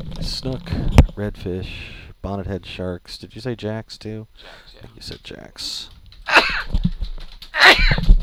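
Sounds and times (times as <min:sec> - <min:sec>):
speech: 0:00.2 - 0:06.8
person sneezing: 0:06.3 - 0:06.7, 0:07.6 - 0:08.1.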